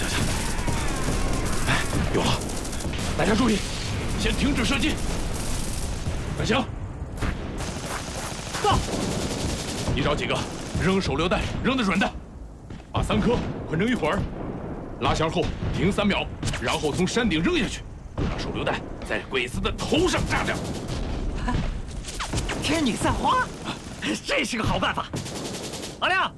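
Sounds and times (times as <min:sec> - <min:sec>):
rifle and machine-gun fire in a battle on a rocky hill: 0:00.0 - 0:12.1, 0:19.8 - 0:26.2
booming blasts: 0:00.0 - 0:26.3.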